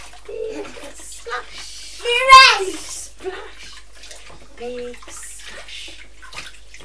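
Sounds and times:
child splashing water in a bath: 0.0s - 6.8s
child vocalising in a high voice: 0.3s - 3.1s.

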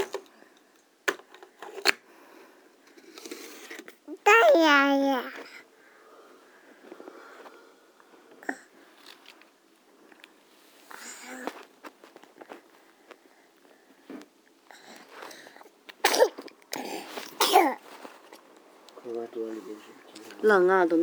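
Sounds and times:
speech: 4.5s - 5.4s, 20.5s - 21.0s
quiet rustling: 5.8s - 15.8s, 17.0s - 21.0s
child with a runny nose sneezing: 16.0s - 17.8s.

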